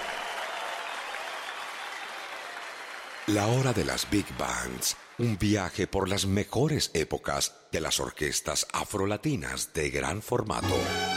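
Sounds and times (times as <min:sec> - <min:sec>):
large audience standing ovation applause: 0:00.0 - 0:05.8
speech: 0:03.3 - 0:11.1.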